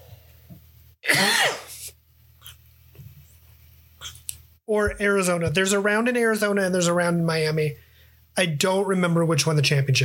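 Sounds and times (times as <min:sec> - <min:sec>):
raspy cough: 0:01.0 - 0:01.8
speech: 0:04.7 - 0:07.8, 0:08.4 - 0:10.0.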